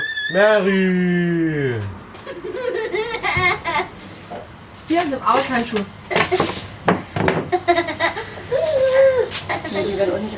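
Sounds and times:
children squealing and shrieking: 0:00.0 - 0:00.7
speech: 0:00.3 - 0:04.0, 0:04.9 - 0:06.6, 0:09.3 - 0:10.3
laughter: 0:02.2 - 0:04.2, 0:07.5 - 0:10.3.

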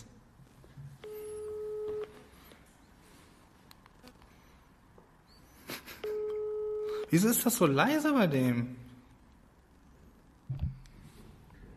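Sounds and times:
quiet noise: 0:00.0 - 0:11.7
electronic telephone call tones as a call is placed: 0:01.0 - 0:02.2, 0:06.0 - 0:07.1
speech: 0:07.1 - 0:08.9.

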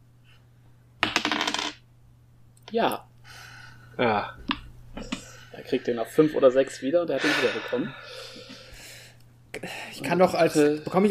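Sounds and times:
dice tumbling across a hard surface: 0:01.0 - 0:01.8
speech: 0:02.7 - 0:03.1, 0:04.0 - 0:08.5, 0:09.6 - 0:11.1.

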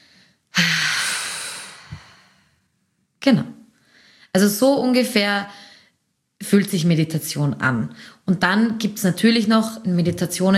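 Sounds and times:
person breathing deeply in through the nose during a meditation exercise: 0:00.0 - 0:02.6
person exhaling forcefully through the mouth during a meditation exercise: 0:00.0 - 0:02.6
speech: 0:03.2 - 0:03.5, 0:04.4 - 0:05.6, 0:06.5 - 0:10.5.

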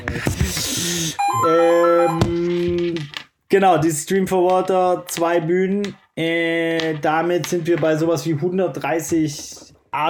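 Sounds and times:
speech: 0:00.0 - 0:01.6, 0:03.5 - 0:10.0
loud old-fashioned house telephone ringing in a basement: 0:01.2 - 0:02.3.

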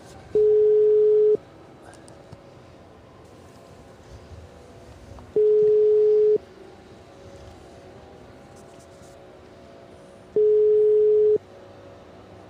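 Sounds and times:
telephone ringback tone on an unanswered call: 0:00.4 - 0:01.4, 0:05.4 - 0:06.4, 0:10.4 - 0:11.4.

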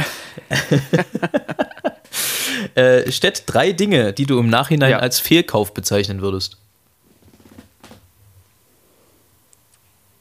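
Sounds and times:
person laughing: 0:00.0 - 0:02.1
speech: 0:00.5 - 0:01.6, 0:02.5 - 0:06.6.

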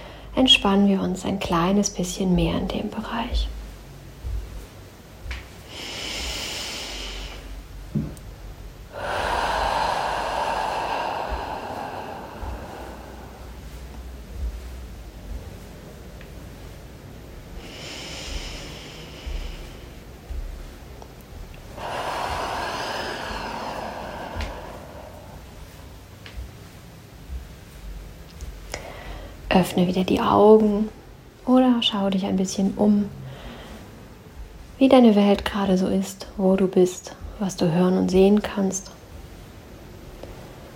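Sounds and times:
slow deep breaths in and out during a guided relaxation exercise: 0:00.0 - 0:00.4, 0:04.2 - 0:29.5, 0:33.1 - 0:34.8
speech: 0:00.4 - 0:03.6, 0:29.6 - 0:30.9, 0:31.5 - 0:33.2, 0:34.8 - 0:38.9.

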